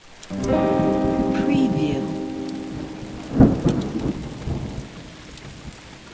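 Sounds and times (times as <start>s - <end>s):
electric guitar strumming with no effect: 0.3s - 5.2s.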